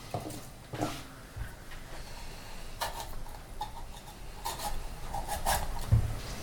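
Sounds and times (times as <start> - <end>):
knife cutting a large bell pepper into chunks: 2.8 - 6.4.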